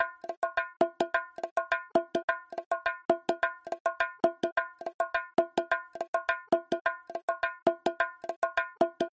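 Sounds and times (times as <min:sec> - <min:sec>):
bongo drums at 105 BPM: 0:00.0 - 0:09.1.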